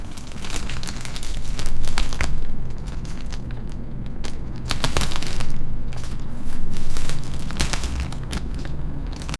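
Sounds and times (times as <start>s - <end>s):
leather clothing rustling: 0.0s - 9.3s.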